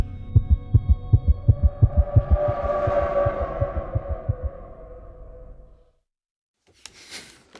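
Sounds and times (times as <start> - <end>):
steady fast heartbeat thumping: 0.0 - 4.5
humming tonal drone: 0.0 - 5.9.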